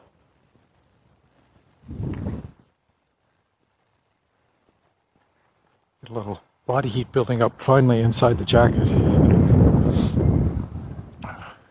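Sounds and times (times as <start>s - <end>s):
wind buffeting a microphone outdoors in cold weather: 1.8s - 2.6s, 6.8s - 11.5s
speech: 6.1s - 9.4s.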